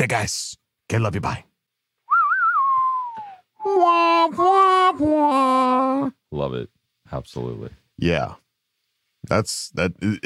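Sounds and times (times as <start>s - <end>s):
speech: 0.0s - 1.5s, 3.7s - 8.4s, 9.2s - 10.2s
person whistling a western film theme tune: 2.1s - 3.5s.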